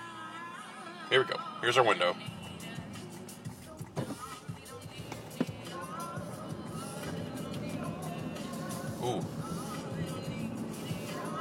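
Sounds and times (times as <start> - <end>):
speech: 1.1 - 2.4, 9.0 - 9.4
heavy car traffic passing: 2.2 - 11.3.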